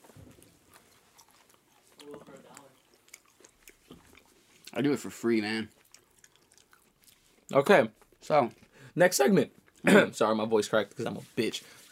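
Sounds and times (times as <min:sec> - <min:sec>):
chewing of food with wet smacks and crunchy clicks: 0:00.0 - 0:08.8, 0:09.5 - 0:09.9
speech: 0:04.8 - 0:05.8, 0:07.5 - 0:11.8.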